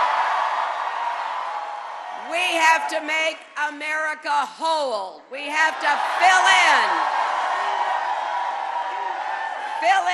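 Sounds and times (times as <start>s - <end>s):
crowd yelling and whooping at a political campaign speech: 0.0s - 3.0s, 5.7s - 10.1s
speech: 2.3s - 7.2s, 9.8s - 10.1s.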